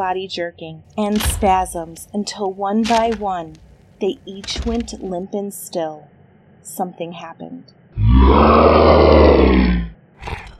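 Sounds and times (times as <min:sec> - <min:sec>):
speech: 0:00.0 - 0:09.9
animal roaring and wailing: 0:08.0 - 0:10.5
breathy burst: 0:08.0 - 0:10.5.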